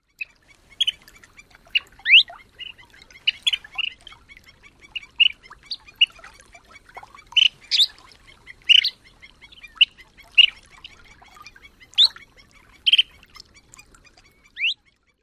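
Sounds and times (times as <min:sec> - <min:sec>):
chirps: 0:00.0 - 0:06.3, 0:07.2 - 0:08.0, 0:08.7 - 0:13.2.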